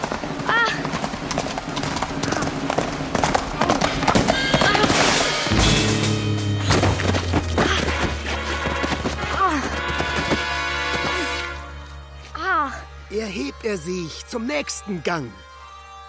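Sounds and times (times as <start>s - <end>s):
horse hooves clip-clopping while ridden: 0.0s - 5.3s, 6.6s - 12.0s
music: 1.8s - 16.0s
swelling low tone: 5.5s - 8.7s
speech: 13.7s - 15.5s.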